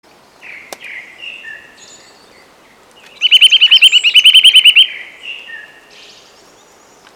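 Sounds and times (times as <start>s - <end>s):
quiet bird calls: 0.4s - 7.1s
Eurasian nuthatch piping notes, Sitta europaea: 3.0s - 5.6s.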